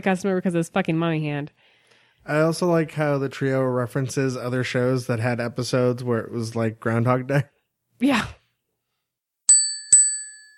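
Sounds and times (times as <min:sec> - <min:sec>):
speech: 0:00.0 - 0:08.4
small shop door bell ringing: 0:09.5 - 0:10.5.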